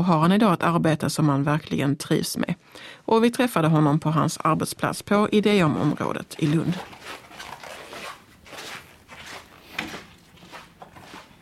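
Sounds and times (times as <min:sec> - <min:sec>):
speech: 0:00.0 - 0:07.2
footsteps on a squeaky floor at a workplace in Lund: 0:05.8 - 0:11.4.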